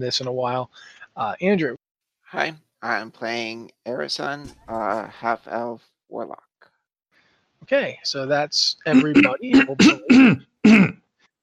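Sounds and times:
speech: 0.0s - 6.5s, 7.6s - 11.0s
person clearing throat: 8.9s - 11.0s.

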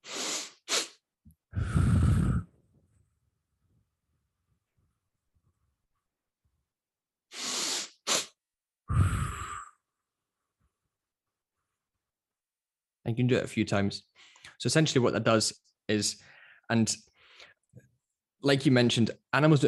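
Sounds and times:
longer breathy exhale through the mouth in physiological sigh breathing: 0.0s - 1.0s, 1.6s - 2.5s, 7.3s - 8.3s, 8.9s - 9.8s
quick sniffing inhales through the nose in physiological sigh breathing: 0.0s - 1.0s, 7.3s - 8.4s
speech: 13.0s - 17.1s, 18.4s - 19.6s.

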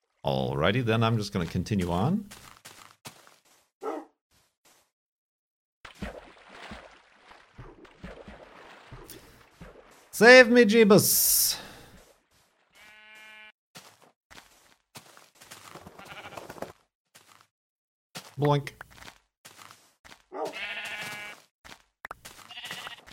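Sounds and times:
speech: 0.2s - 2.5s, 10.2s - 11.6s, 18.4s - 18.8s
sheep bleating: 12.7s - 13.6s, 15.9s - 16.5s, 20.4s - 21.4s, 22.5s - 23.1s.

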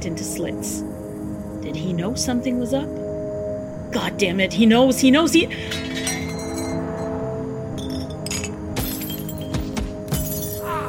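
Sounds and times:
speech: 0.0s - 1.0s, 1.6s - 3.0s, 3.9s - 6.1s
glass fragments tinkling and clinking as they fall: 5.7s - 7.1s, 7.8s - 10.7s
glass shattering: 5.7s - 7.1s, 7.8s - 10.7s.

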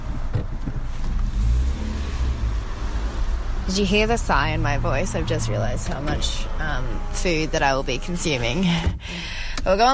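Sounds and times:
car engine rumbling in a fast-food drive-through: 0.0s - 9.9s
speech: 3.7s - 9.9s.

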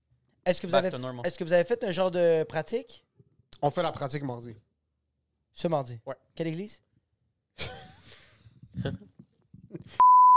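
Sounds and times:
speech: 0.5s - 4.7s, 5.6s - 6.8s, 7.6s - 7.8s, 8.8s - 9.1s, 9.7s - 10.1s
person speaking in breathy murmured speech: 8.7s - 9.1s
loud steady electronic censor beep: 10.0s - 10.3s.

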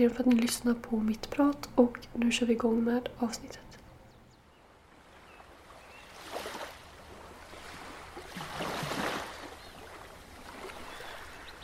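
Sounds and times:
speech: 0.0s - 3.7s
ocean waves washing in and breaking by the sea: 4.6s - 11.6s.

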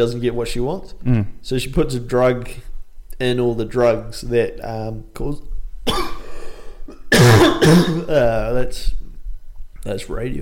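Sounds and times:
speech: 0.0s - 6.0s, 7.7s - 9.0s, 9.8s - 10.3s
person coughing: 5.9s - 8.1s
throat clearing: 6.9s - 8.1s.

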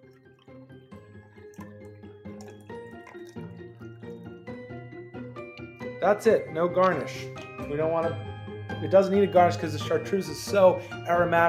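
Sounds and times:
stirred cocktail poured from a mixing glass through a strainer into a glass: 0.0s - 4.3s
speech: 6.0s - 11.4s.

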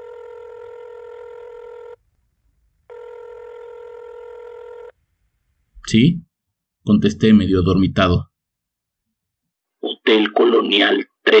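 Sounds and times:
cell phone ringing: 0.0s - 2.0s, 2.9s - 5.0s
speech: 5.9s - 8.3s, 10.1s - 11.3s.

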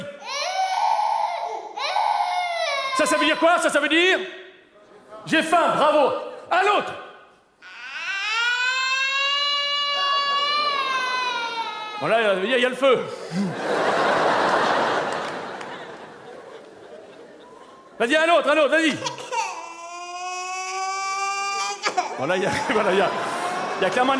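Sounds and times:
baby crying in wails: 0.0s - 3.7s, 7.6s - 12.5s, 18.9s - 24.1s
speech: 3.0s - 4.4s, 5.2s - 7.0s, 12.0s - 14.2s, 18.0s - 19.1s, 22.2s - 24.1s
laughter: 9.8s - 11.8s, 13.3s - 18.0s, 22.0s - 24.1s.

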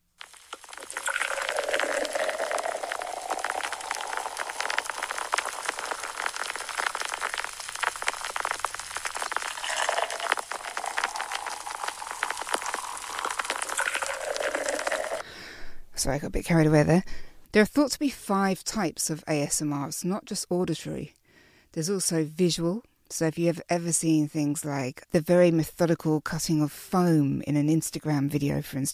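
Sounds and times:
beer foam fizzing as an app sound effect: 0.0s - 15.2s
speech: 16.0s - 21.2s, 21.8s - 28.9s.

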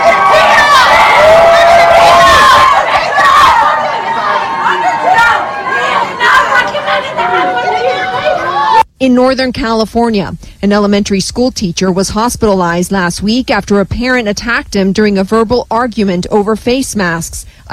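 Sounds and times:
crowd of protesters yelling and shouting: 0.0s - 8.9s
speech: 9.2s - 17.7s.

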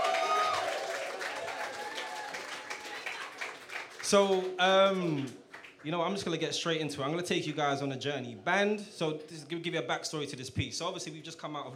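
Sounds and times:
people cheering: 0.0s - 5.3s
audience applause: 0.0s - 5.8s
speech: 4.1s - 11.7s.

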